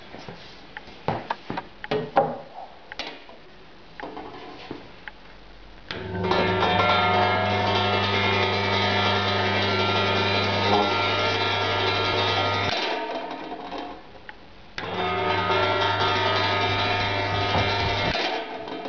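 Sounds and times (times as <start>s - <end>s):
homemade induction hob: 5.9s - 14.0s, 14.8s - 18.8s.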